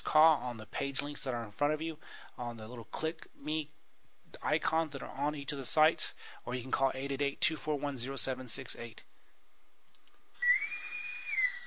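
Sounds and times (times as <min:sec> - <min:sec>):
speech: 0:00.1 - 0:09.1
Navy boatswain's pipe whistle signaling the end: 0:10.4 - 0:11.6.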